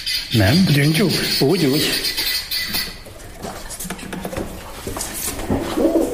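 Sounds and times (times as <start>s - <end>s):
speech: 0.4s - 2.1s
pigeon cooing: 1.3s - 6.1s
busy rustling background: 1.7s - 6.1s.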